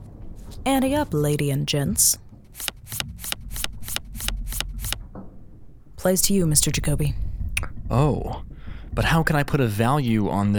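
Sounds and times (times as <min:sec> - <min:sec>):
speech: 0:00.6 - 0:02.2, 0:06.0 - 0:07.2, 0:07.9 - 0:10.5
deck of playing cards being shuffled: 0:02.6 - 0:05.0.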